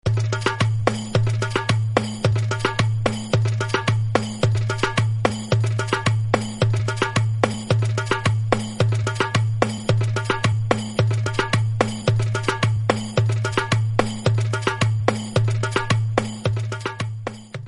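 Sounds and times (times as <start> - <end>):
African drum ringtone: 0.1 - 17.6.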